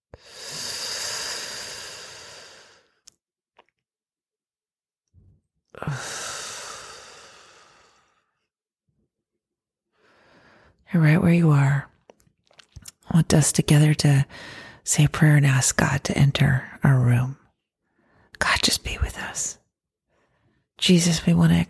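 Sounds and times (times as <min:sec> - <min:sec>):
deep breathing in and out during a guided breathing exercise: 0:00.1 - 0:03.0, 0:05.8 - 0:08.5, 0:09.9 - 0:10.8, 0:14.3 - 0:14.8
speech: 0:10.9 - 0:11.9, 0:13.2 - 0:17.4, 0:18.4 - 0:19.6, 0:20.8 - 0:21.6.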